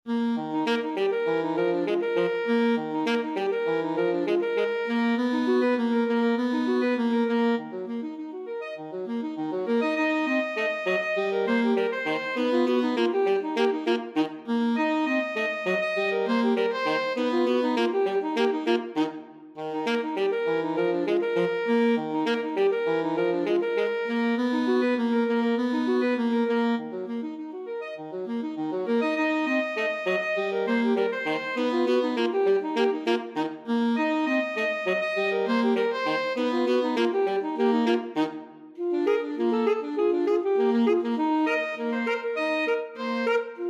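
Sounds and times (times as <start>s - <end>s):
ragtime alto saxophone duet: 0.1s - 43.6s.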